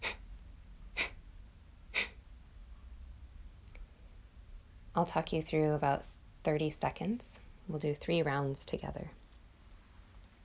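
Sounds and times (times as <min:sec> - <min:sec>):
short forceful exhales through a slight constriction in belly breathing: 0:00.0 - 0:00.2, 0:01.9 - 0:02.2
speech: 0:05.0 - 0:09.2.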